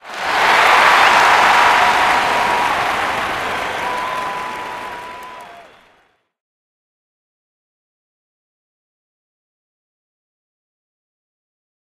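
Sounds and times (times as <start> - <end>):
people cheering at bumper cars: 0.0 - 6.2.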